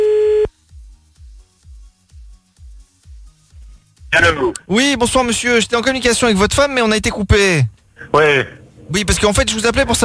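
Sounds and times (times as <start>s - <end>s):
steady telephone tone while redialing a call: 0.0s - 0.5s
speech: 4.1s - 10.0s.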